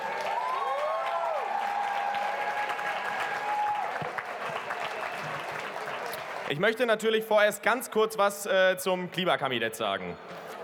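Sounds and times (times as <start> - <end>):
large outdoor crowd applauding at a climate rally in Cologne Germany: 0.0 - 6.6
speech: 6.5 - 10.4.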